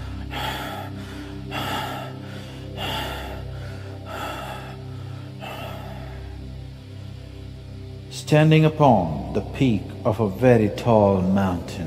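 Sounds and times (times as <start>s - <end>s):
rapid rasping breathless gasps: 0.0s - 6.5s
speech: 8.3s - 11.8s.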